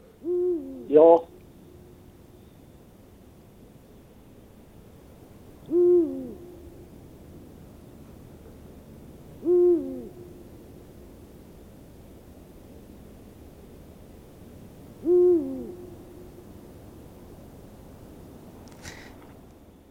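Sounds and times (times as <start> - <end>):
Eurasian eagle-owl hooting: 0.0 - 2.0, 5.6 - 6.9, 9.4 - 10.6, 15.0 - 16.5
faint steady hiss: 0.0 - 19.8
speech: 0.9 - 1.3.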